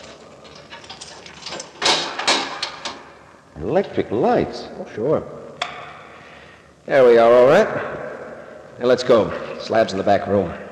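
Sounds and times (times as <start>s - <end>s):
key rattling and clicking in a Yale lock: 0.0s - 3.0s
speech: 3.6s - 5.4s, 6.9s - 8.0s, 8.8s - 10.6s.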